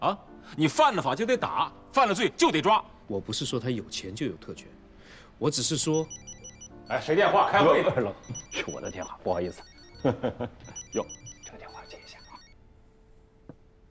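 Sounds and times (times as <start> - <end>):
speech: 0.0 - 11.3
mobile phone ringtone chiming in electronic bursts: 5.8 - 12.6.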